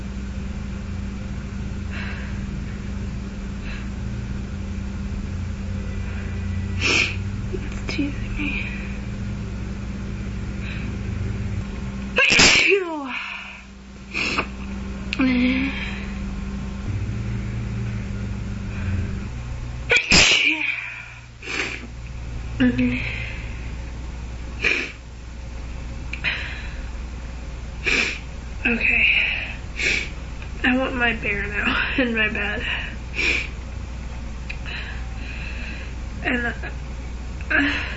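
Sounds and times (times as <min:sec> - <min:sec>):
steady low hum: 0:00.0 - 0:37.9
loud forceful sneezes: 0:12.2 - 0:12.8, 0:19.9 - 0:20.7
speech: 0:32.1 - 0:32.8.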